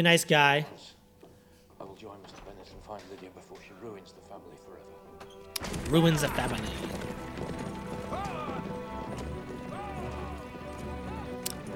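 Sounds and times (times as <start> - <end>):
speech: 0.0 - 1.0, 5.6 - 7.5
horse hooves galloping: 5.6 - 11.7.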